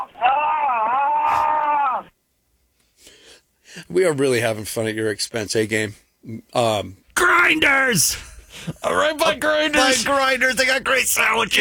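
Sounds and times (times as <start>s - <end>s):
man screaming on a 911 call recording: 0.0s - 2.1s, 7.2s - 8.2s, 8.8s - 11.5s
speech: 3.8s - 11.5s.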